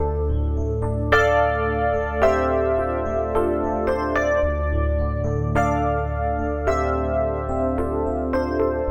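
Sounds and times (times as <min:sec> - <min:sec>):
sad keyboard loops: 0:00.0 - 0:08.8.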